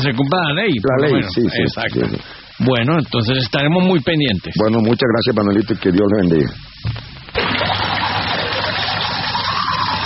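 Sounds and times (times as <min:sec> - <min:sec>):
speech: 0:00.0 - 0:07.8
tap water gushing while brushing teeth: 0:07.3 - 0:10.0.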